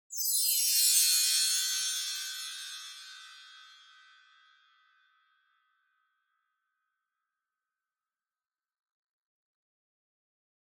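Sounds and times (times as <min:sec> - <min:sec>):
wind chimes with fast wide reverb: 0:00.1 - 0:04.9.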